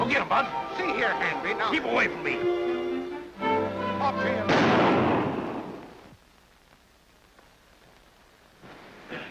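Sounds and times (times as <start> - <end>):
speech: 0.2 - 2.6, 4.1 - 5.0
gunshots: 4.5 - 6.0.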